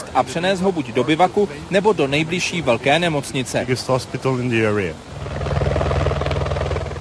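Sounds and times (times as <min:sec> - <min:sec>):
speech: 0:00.2 - 0:05.4
helicopter rotor chopping: 0:05.0 - 0:06.9.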